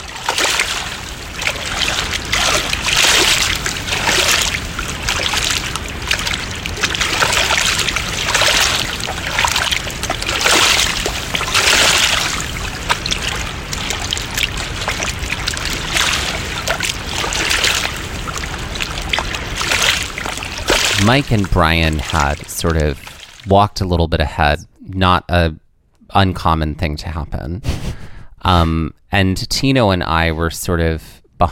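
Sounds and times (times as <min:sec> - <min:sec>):
river water rushing: 0:00.0 - 0:23.5
speech: 0:21.1 - 0:31.5.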